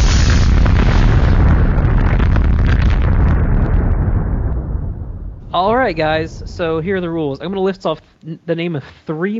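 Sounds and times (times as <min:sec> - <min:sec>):
loud explosion with crackling debris as a game segment theme sting: 0:00.0 - 0:07.8
speech: 0:05.6 - 0:09.3.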